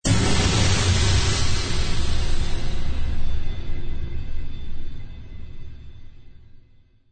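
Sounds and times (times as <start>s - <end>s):
aggressive cinematic trailer cymbal crash: 0.0s - 5.6s.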